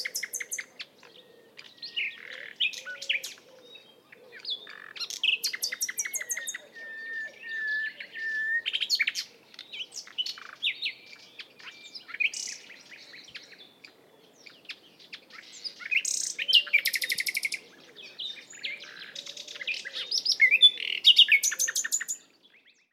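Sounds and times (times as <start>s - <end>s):
Luscinia megarhynchos common nightingale song: 0.0s - 22.9s.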